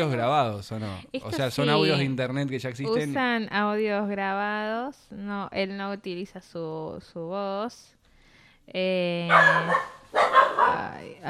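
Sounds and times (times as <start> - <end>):
speech: 0.0 - 8.0, 8.7 - 11.2
dog barking: 9.3 - 11.0.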